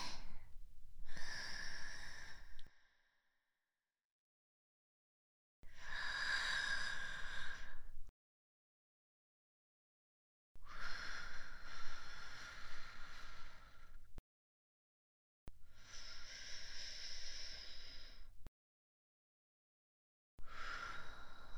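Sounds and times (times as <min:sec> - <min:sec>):
slow deep breathing in and out during a guided breathing exercise: 0:00.0 - 0:03.3, 0:05.8 - 0:08.1, 0:10.6 - 0:14.2, 0:15.8 - 0:18.4, 0:20.5 - 0:21.5.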